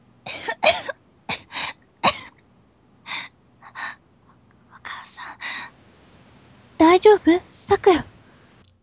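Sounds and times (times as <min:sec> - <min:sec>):
girl coughing bent double on a hospital bed: 0:00.3 - 0:02.4
speech: 0:07.1 - 0:08.1.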